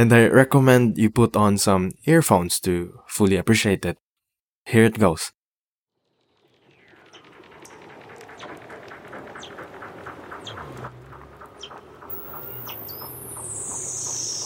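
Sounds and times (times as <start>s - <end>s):
speech: 0.0s - 4.0s, 4.6s - 5.4s
Weddell seal calls in the Antarctic: 9.3s - 14.4s.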